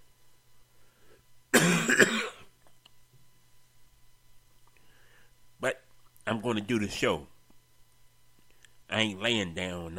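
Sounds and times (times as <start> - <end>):
harsh raspy coughing from a cold: 1.5 - 2.5
speech: 6.4 - 7.3, 9.0 - 9.9.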